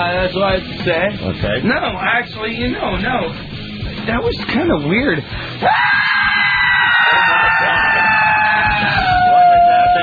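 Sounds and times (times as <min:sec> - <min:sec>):
speech: 0:00.0 - 0:06.1
loud screaming of several voices: 0:05.6 - 0:10.0.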